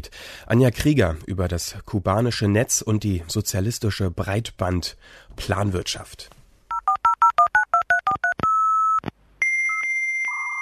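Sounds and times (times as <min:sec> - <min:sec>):
speech: 0:00.0 - 0:06.4
touch-tone dialing beeps: 0:06.7 - 0:10.6.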